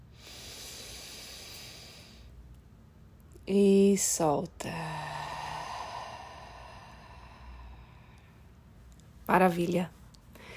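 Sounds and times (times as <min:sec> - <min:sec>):
deep inhale through nose: 0:00.1 - 0:02.4, 0:05.0 - 0:08.4
speech: 0:03.5 - 0:05.1, 0:09.3 - 0:10.0.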